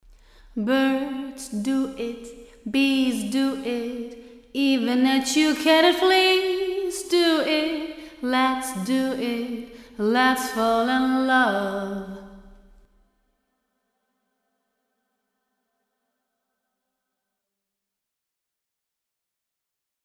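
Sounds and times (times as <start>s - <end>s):
voice with plate reverb: 0.3s - 12.5s.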